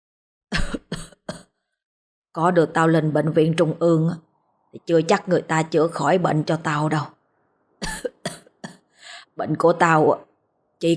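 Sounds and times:
old man coughing hard: 0.5 - 1.5, 7.8 - 8.8
speech: 2.4 - 7.2, 9.4 - 10.9.

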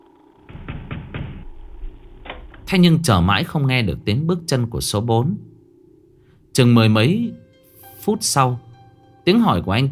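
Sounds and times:
low rumble: 0.4 - 3.4
rapid heavy knocking on a door: 0.5 - 2.9
speech: 2.7 - 5.5, 6.6 - 7.4, 8.0 - 8.6, 9.2 - 9.9.

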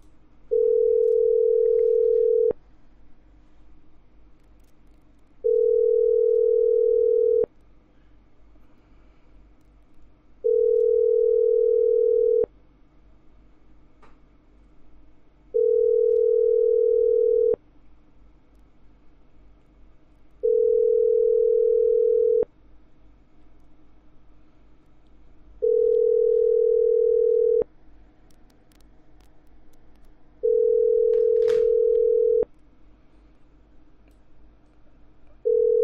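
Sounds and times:
telephone line tones while a number is dialed: 0.5 - 2.6, 5.4 - 7.5, 10.4 - 12.5, 15.6 - 17.6, 20.4 - 22.5, 25.6 - 27.6, 30.4 - 32.5, 35.4 - 35.8.

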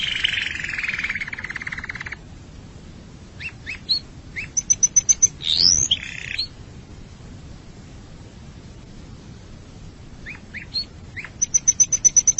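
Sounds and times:
canary song: 0.0 - 2.2, 3.4 - 6.6, 10.2 - 12.3.

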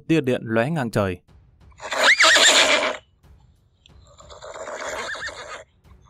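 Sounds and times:
speech: 0.0 - 1.9
horse neighing as it rears up on grass: 1.8 - 3.0, 4.1 - 5.6.

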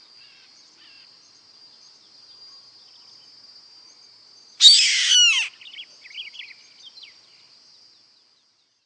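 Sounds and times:
steady insect drone: 0.0 - 8.8
Yellow-headed caracara giving a harsh screeching scream: 4.6 - 5.6
faint high chirps: 4.6 - 6.3.

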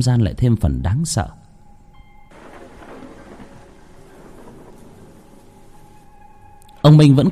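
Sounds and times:
speech: 0.0 - 1.4, 6.8 - 7.2
thunder rumbling during a storm at an open grave: 1.5 - 7.2
heavy rain during a storm at an open grave: 2.3 - 7.2.

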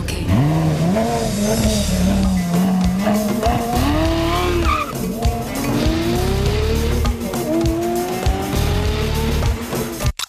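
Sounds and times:
car engine: 0.0 - 10.1
car tyres screeching as the car drives off: 0.3 - 8.0.

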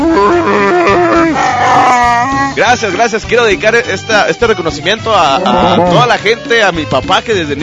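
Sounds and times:
man's voice imitating a Wookiee roar: 0.0 - 2.6, 5.4 - 6.0
speech: 2.7 - 7.6.

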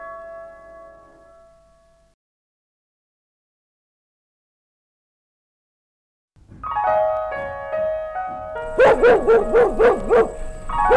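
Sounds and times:
dog barking and yipping: 8.7 - 10.9.

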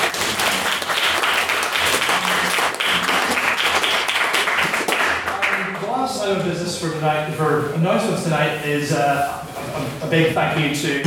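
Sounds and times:
crowd applauding: 0.0 - 6.0
speech: 7.0 - 11.0.

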